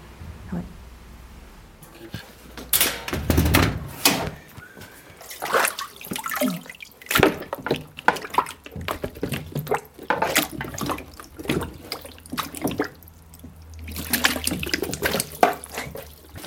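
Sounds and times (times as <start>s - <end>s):
water splashing and dripping in a papermaking vat: 1.8s - 16.4s
water pouring in a papermaking vat: 5.0s - 16.4s.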